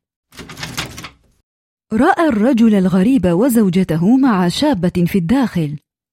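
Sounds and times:
wooden door creaking open: 0.3 - 1.4
speech: 1.9 - 5.8.

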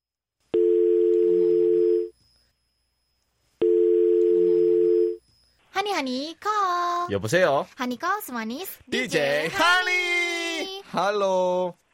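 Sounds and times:
telephone ringback tone: 0.6 - 2.2, 3.6 - 5.2
speech: 5.8 - 10.2, 10.9 - 11.8.

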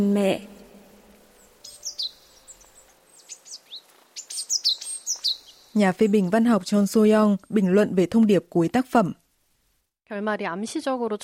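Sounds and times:
speech: 0.0 - 0.5, 5.8 - 9.2, 10.1 - 11.2
bird singing on an apricot tree branch: 0.0 - 7.6.

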